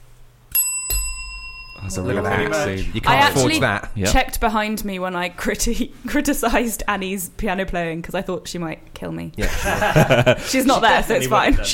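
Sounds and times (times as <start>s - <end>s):
single bright metallic bell ringing: 0.5s - 2.7s
speech: 1.8s - 11.7s
laughter: 9.4s - 11.7s.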